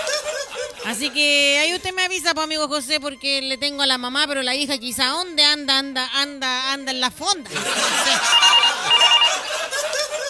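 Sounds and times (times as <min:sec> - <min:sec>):
laughter: 0:00.0 - 0:01.7, 0:07.5 - 0:10.2
speech: 0:00.9 - 0:08.4
telephone ringing with electronic trills: 0:07.6 - 0:09.8.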